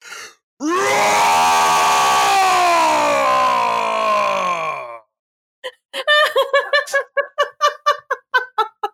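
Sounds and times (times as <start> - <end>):
person imitating a banshee's scream with a sustained wail: 0.6 - 5.0
laughter: 6.0 - 8.9.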